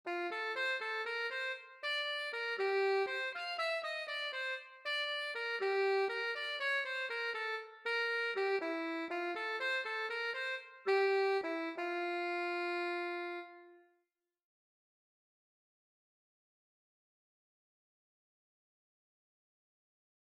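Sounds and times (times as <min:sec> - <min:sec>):
alto saxophone: 0:00.1 - 0:14.0.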